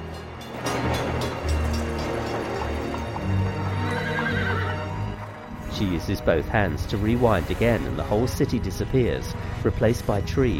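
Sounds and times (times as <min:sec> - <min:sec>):
horse hooves clip-clopping with horse-drawn carriages on a street: 0:00.0 - 0:06.5
horses neighing on a street: 0:02.6 - 0:05.8
speech: 0:05.8 - 0:10.5.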